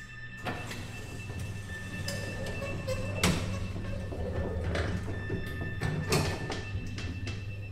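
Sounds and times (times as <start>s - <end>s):
low mechanical hum and rumble of moving lift: 0.0s - 7.7s
sliding elevator doors thudding shut: 0.4s - 7.7s.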